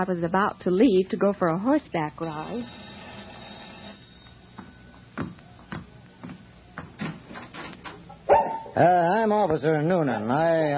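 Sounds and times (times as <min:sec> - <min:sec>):
speech: 0:00.0 - 0:02.9, 0:08.8 - 0:10.7
dogs barking: 0:08.2 - 0:08.8.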